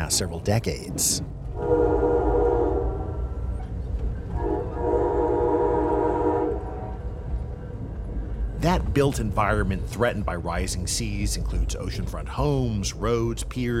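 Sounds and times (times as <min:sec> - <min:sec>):
passenger train rumbling along the tracks by the coastline: 0:00.0 - 0:13.7
speech: 0:00.1 - 0:02.1, 0:08.7 - 0:13.7
long loud passenger train horn blasts: 0:01.5 - 0:03.4, 0:04.3 - 0:07.1.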